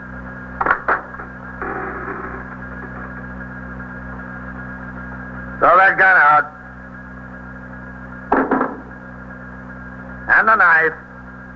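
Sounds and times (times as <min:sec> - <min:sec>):
steady low hum: 0:00.0 - 0:11.5
speech: 0:05.9 - 0:06.5, 0:10.5 - 0:11.0
door being opened with scraping knocks: 0:08.3 - 0:08.9.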